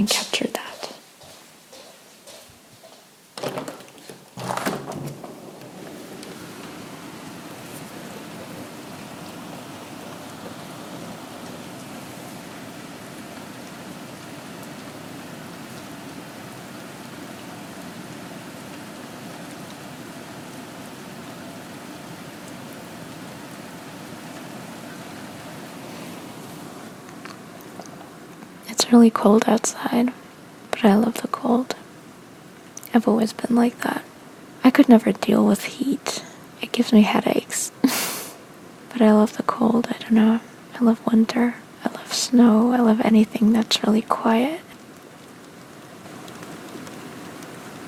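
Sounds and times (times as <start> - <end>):
speech: 0.0 - 0.6, 28.9 - 30.2, 30.8 - 31.8, 32.9 - 34.1, 34.7 - 37.6, 39.0 - 44.6
rain falling outdoors on a cold night: 0.0 - 47.8
sharp knocks and thumps: 3.4 - 6.7.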